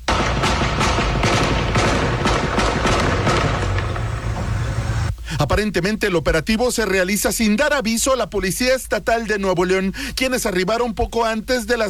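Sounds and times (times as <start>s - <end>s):
bursts of gunfire during armed confrontation: 0.0s - 5.1s
constant loud rumble: 0.0s - 5.2s
speech: 5.4s - 11.8s.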